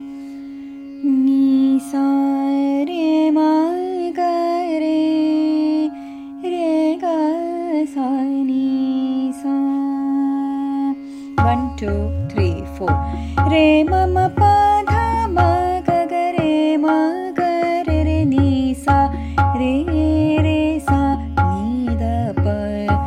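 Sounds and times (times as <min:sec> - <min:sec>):
raga gat instrumental: 0:00.0 - 0:07.8, 0:08.4 - 0:23.0.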